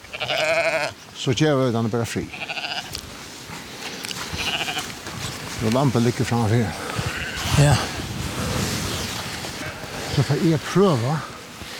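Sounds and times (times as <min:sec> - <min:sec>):
young lamb bleating: 0:00.0 - 0:01.0, 0:02.2 - 0:03.0, 0:04.3 - 0:04.9, 0:07.0 - 0:07.6
speech: 0:01.2 - 0:02.4, 0:05.6 - 0:08.0, 0:10.2 - 0:11.3.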